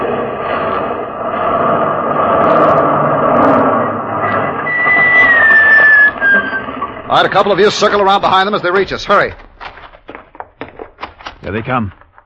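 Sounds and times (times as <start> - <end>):
high tire squeal of a swerving truck: 0.0 - 8.2
loud truck engine roaring: 0.0 - 9.8
speech: 7.1 - 9.4, 11.5 - 12.0.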